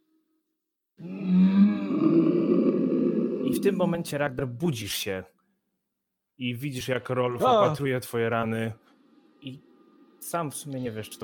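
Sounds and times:
powerful roar from a large creature: 1.0 - 4.0
speech: 2.2 - 5.4, 6.4 - 11.2.

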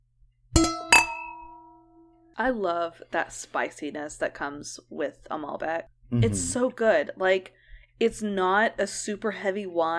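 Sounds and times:
wine glasses clinking in a toast: 0.6 - 2.1
speech: 2.4 - 9.9.

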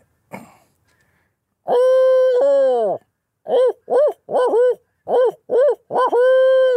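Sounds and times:
person imitating barred owl hoots: 1.6 - 6.7.

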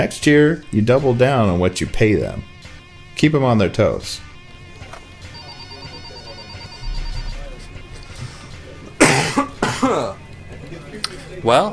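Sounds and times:
speech: 0.0 - 2.5, 3.2 - 4.3, 11.4 - 11.7
harsh loud coughs: 9.0 - 10.2.

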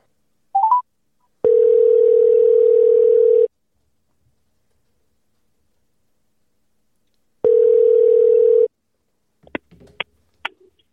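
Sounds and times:
telephone ringing tone while placing a call: 1.4 - 3.5, 7.4 - 8.7.

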